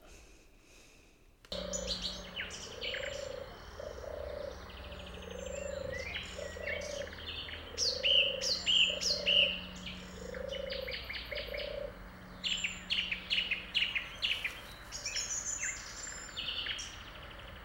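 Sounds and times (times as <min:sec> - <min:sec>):
birds chirping and whistling: 0:01.5 - 0:17.6
turtle dove cooing: 0:01.5 - 0:17.6.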